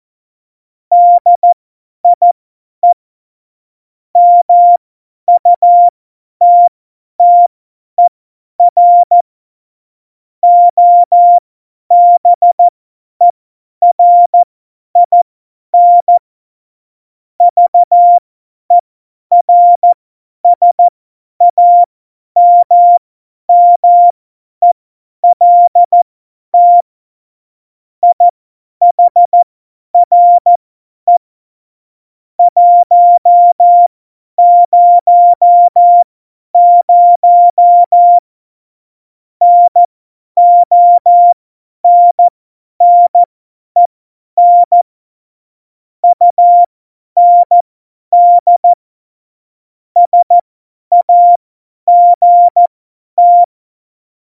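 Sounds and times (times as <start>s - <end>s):
CW morse code beeps: 0.9s - 1.6s, 4.2s - 9.2s, 10.4s - 12.7s, 13.8s - 14.4s, 15.0s - 15.2s, 15.8s - 16.2s, 17.4s - 20.0s, 20.6s - 26.0s, 26.6s - 26.9s, 28.0s - 29.4s, 30.0s - 31.2s, 32.4s - 38.2s, 39.4s - 44.9s, 46.0s - 47.6s, 48.2s - 48.8s, 50.0s - 53.5s.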